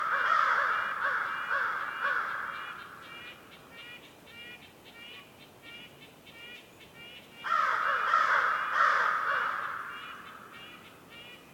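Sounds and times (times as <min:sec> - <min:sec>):
crow cawing in a winter forest: 0:00.0 - 0:04.0, 0:07.4 - 0:11.4.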